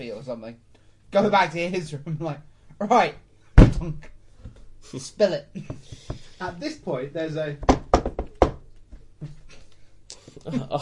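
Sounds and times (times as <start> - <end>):
speech: 0.0 - 4.2, 4.8 - 8.0, 10.4 - 10.7
knocking on a door: 3.6 - 3.9, 7.6 - 8.6.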